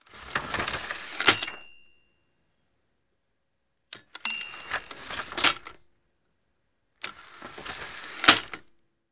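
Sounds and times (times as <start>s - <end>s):
paper typewriter bell: 0.7s - 2.2s, 4.2s - 5.7s.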